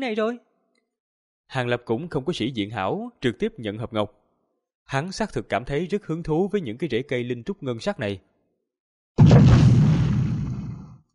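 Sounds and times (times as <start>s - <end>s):
speech: 0.0s - 0.5s, 1.5s - 4.2s, 4.9s - 8.3s
loud explosion in a magical battle: 9.2s - 11.0s.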